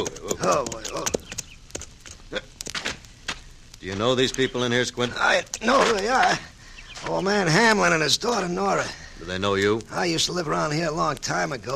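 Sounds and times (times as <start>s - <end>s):
speech: 0.0s - 1.2s, 3.8s - 11.7s
horses' hooves clip-clopping: 0.0s - 6.4s.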